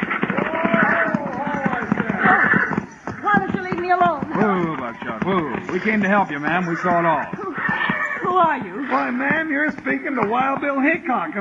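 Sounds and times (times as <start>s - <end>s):
horse whinnying: 0.0s - 3.4s, 5.5s - 9.7s
excited voices: 0.0s - 11.4s
horses' hooves clopping: 0.0s - 11.4s
speech: 5.0s - 7.4s, 8.4s - 11.4s.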